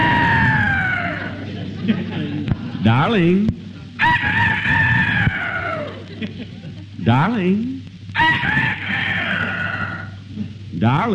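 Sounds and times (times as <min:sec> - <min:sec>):
rooster crowing in the morning: 0:00.0 - 0:01.5, 0:04.0 - 0:06.1, 0:08.2 - 0:10.2
laughter: 0:00.0 - 0:03.2, 0:03.9 - 0:07.1, 0:08.2 - 0:10.6
speech: 0:02.8 - 0:03.7, 0:06.2 - 0:09.0, 0:10.8 - 0:11.1.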